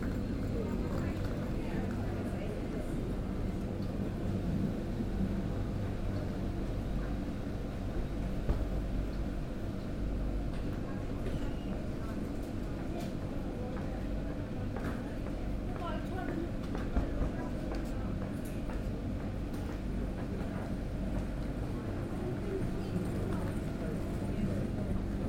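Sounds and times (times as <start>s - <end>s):
idling trains rumbling on a railway station platform: 0.0s - 25.2s.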